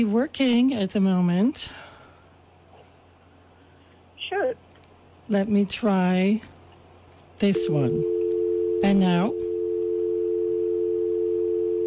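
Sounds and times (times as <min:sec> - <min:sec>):
speech: 0:00.0 - 0:01.9, 0:05.3 - 0:06.5, 0:07.4 - 0:08.1, 0:08.8 - 0:09.5
telephone dial tone: 0:07.6 - 0:11.8.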